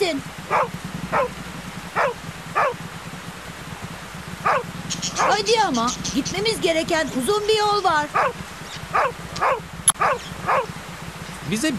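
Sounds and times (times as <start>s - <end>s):
steady low rumbling noise: 0.0s - 11.7s
dog barking in short yaps: 0.5s - 1.4s, 2.0s - 2.8s, 4.4s - 5.5s, 8.1s - 10.7s
speech: 5.2s - 8.4s, 11.5s - 11.7s.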